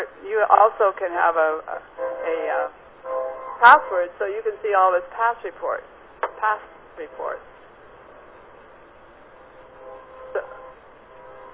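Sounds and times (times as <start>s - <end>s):
speech: 0.0s - 2.8s, 3.6s - 7.5s
short tonal train horn-like blast: 2.0s - 2.4s, 9.6s - 11.5s.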